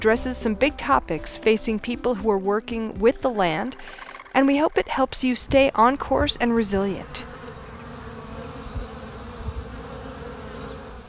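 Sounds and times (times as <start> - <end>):
speech: 0.0 - 7.3
soft low bumps: 0.0 - 7.6
bees buzzing: 0.0 - 11.0.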